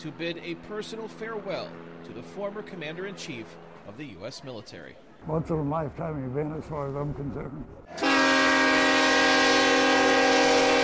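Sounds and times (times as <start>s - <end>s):
speech: 0.0s - 8.4s
train horn blaring in wet weather: 7.9s - 10.8s.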